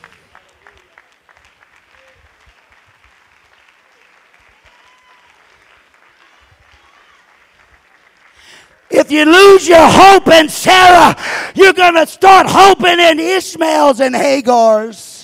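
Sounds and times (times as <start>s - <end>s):
large group clapping hands: 0.0s - 9.0s
speech: 8.9s - 15.0s.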